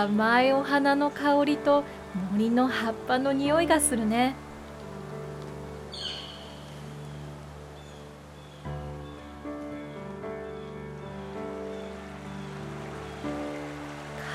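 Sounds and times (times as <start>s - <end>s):
speech: 0.0s - 4.4s
flowing river water rushing steadily: 0.0s - 8.6s, 11.2s - 14.3s.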